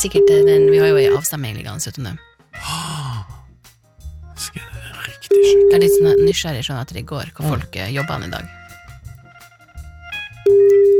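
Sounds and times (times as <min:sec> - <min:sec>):
steady loud electronic telephone ringing tone through a handset: 0:00.0 - 0:01.2, 0:05.3 - 0:06.4, 0:10.5 - 0:10.9
speech: 0:00.0 - 0:02.9, 0:05.3 - 0:08.6.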